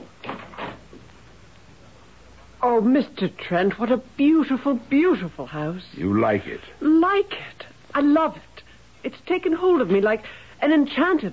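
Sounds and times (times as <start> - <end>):
door being opened with latch clunks: 0.0 - 0.9
speech: 2.7 - 11.3.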